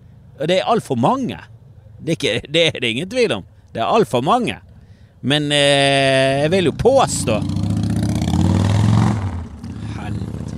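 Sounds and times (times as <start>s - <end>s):
speech: 0.4s - 7.6s
motorcycle engine revving outside: 6.4s - 10.5s.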